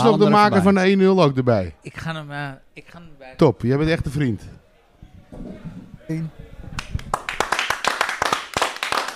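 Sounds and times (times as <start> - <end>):
speech: 0.0 - 4.6, 5.3 - 7.0
people clapping as a head coach takes a seat: 6.7 - 9.1.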